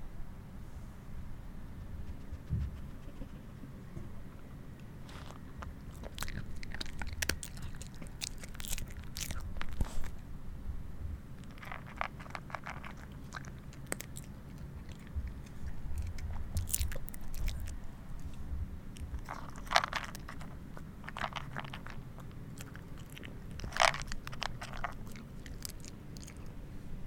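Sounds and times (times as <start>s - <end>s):
low steady rumble: 0.0s - 27.0s
soft chewing and mouth sounds: 4.8s - 10.2s, 11.4s - 26.7s
crisp bites and crunches of someone eating: 5.1s - 10.2s, 11.4s - 17.8s, 21.1s - 26.5s.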